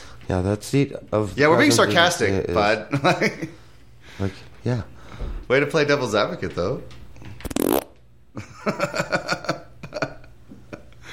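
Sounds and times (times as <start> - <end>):
speech: 0.3 - 3.6, 4.2 - 7.5, 8.4 - 9.4
short loud blaring fart noise: 7.4 - 8.0.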